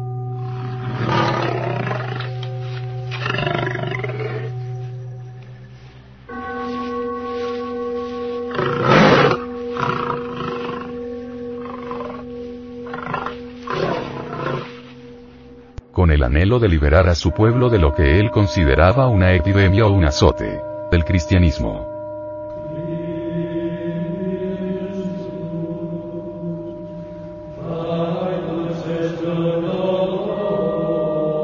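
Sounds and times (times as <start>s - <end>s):
steady low drone of sustained tones: 0.0s - 31.4s
lions roaring in a Roman circus: 0.4s - 5.1s, 8.5s - 15.0s
speech: 16.2s - 21.9s.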